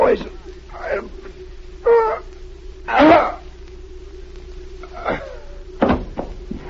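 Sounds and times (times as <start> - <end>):
steady low hum: 0.0 - 6.6
speech: 0.1 - 1.3
man falling off a chair: 5.8 - 6.6.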